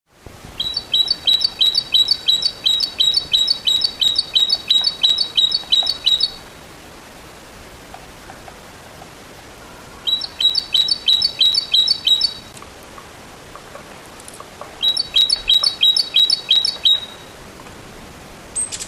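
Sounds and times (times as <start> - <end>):
Parus major calling: 0.6 - 6.4, 10.0 - 12.5, 14.8 - 17.4.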